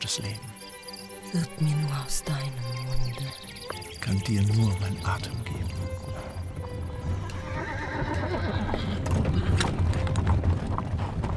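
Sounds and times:
horse hooves clip-clopping as a horse-drawn carriage travels: 0.0s - 11.3s
speech: 0.2s - 0.6s, 1.3s - 6.4s
horse-drawn carriage creaking and rattling: 3.4s - 11.3s
horse neighing: 6.2s - 9.8s.

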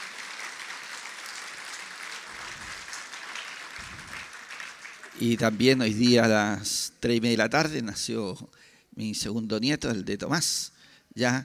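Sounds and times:
faint applause from a group celebrating the birth of a grandchild: 0.0s - 5.5s
speech: 5.2s - 11.4s.

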